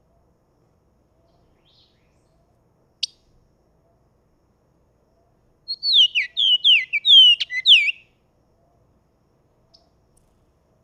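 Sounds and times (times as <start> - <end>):
Bahama oriole Icterus northropi song: 5.7 - 8.1.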